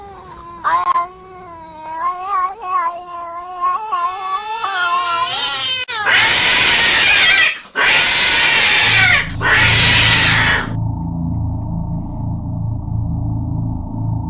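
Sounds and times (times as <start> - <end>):
cat caterwauling with wavering yowls: 2.2 - 10.8
loud bursts of harsh broadband noise: 6.1 - 10.8
low steady droning hum: 8.8 - 14.2.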